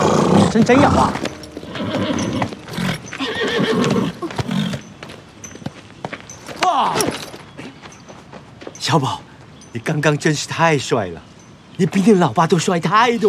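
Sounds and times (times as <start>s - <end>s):
horse neighing: 0.0s - 4.9s
hooves clip-clopping and thumping: 0.0s - 10.2s
speech: 0.5s - 1.3s, 8.9s - 9.2s, 9.8s - 13.2s.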